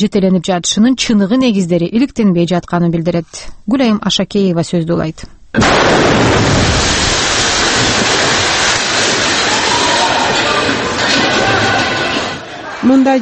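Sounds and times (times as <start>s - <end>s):
speech: 0.0s - 6.9s, 12.8s - 13.2s
deafening explosion: 5.6s - 12.4s.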